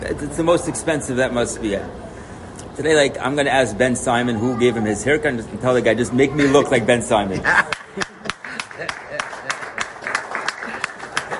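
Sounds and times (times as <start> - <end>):
speech: 0.2 - 2.0, 2.8 - 7.7
laughter: 6.4 - 11.3
crowd cheering and calling out: 7.6 - 11.3
audience clapping: 7.7 - 11.3.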